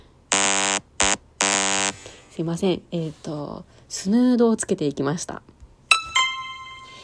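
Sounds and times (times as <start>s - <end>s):
smartphone alarm clock buzzing: 0.3s - 2.2s
speech: 2.4s - 5.5s.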